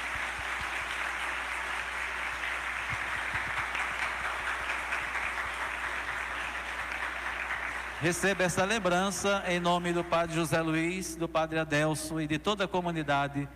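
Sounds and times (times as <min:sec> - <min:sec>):
large audience applauding in a reverberant hall: 0:00.0 - 0:10.5
speech: 0:08.0 - 0:13.5.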